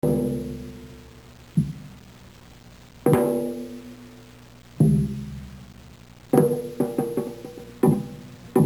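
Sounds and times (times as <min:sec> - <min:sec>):
changgo drum: 0:00.0 - 0:01.0, 0:03.1 - 0:04.0, 0:04.8 - 0:05.6, 0:06.3 - 0:08.6.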